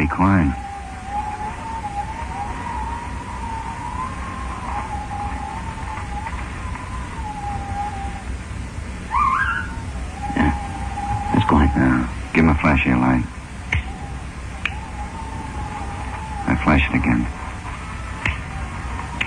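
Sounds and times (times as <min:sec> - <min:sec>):
car engine drone: 0:00.0 - 0:19.2
constant noise: 0:00.0 - 0:19.2
speech: 0:00.1 - 0:00.6, 0:12.6 - 0:13.4, 0:16.7 - 0:17.4.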